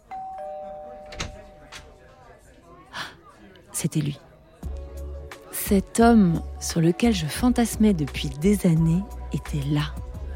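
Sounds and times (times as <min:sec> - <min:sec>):
doorbell chiming two ringing tones: 0:00.0 - 0:02.1
speech: 0:03.8 - 0:04.3, 0:05.7 - 0:10.0.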